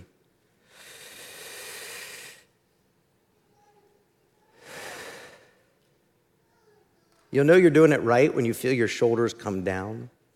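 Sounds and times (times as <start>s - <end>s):
long deep breaths taken slowly before prayer: 0.6s - 2.6s, 4.4s - 5.9s
speech: 7.3s - 10.2s.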